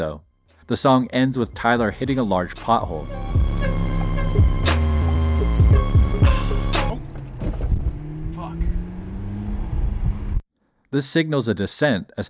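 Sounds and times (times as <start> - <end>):
speech: 0.0 - 3.8, 10.9 - 12.2
McLaren sports car engine revving and speeding away: 2.5 - 10.4.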